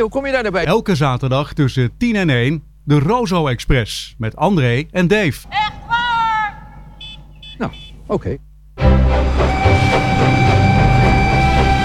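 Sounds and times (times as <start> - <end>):
speech: 0.0 - 5.8, 7.6 - 10.6
faint high whine: 0.0 - 11.8
train rumbling along rails with low-end roar and wheel clatter: 9.0 - 11.8.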